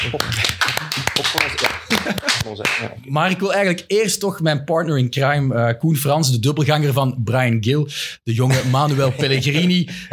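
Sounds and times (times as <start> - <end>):
speech: 0.0 - 0.6, 1.2 - 10.1
laughter: 0.0 - 3.0, 8.5 - 10.1
small group applauding in studio: 0.0 - 3.0.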